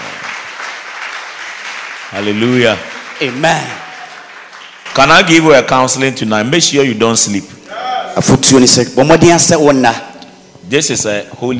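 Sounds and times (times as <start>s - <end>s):
crowd clapping in a large room: 0.0s - 6.0s
speech: 2.1s - 3.8s, 5.0s - 7.6s, 8.2s - 10.1s, 10.7s - 11.5s.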